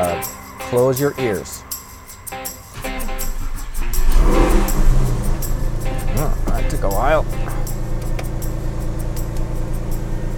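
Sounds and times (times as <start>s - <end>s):
speech: 0.2s - 1.7s, 6.2s - 7.6s
car engine revving on a race track: 2.7s - 10.3s.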